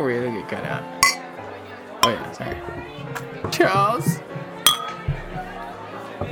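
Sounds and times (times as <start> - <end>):
speech: 0.0 - 1.1, 2.0 - 4.5
low murmur of voices: 0.0 - 6.3
glasses clinking in a toast: 1.0 - 1.4, 2.0 - 2.4, 4.7 - 5.1.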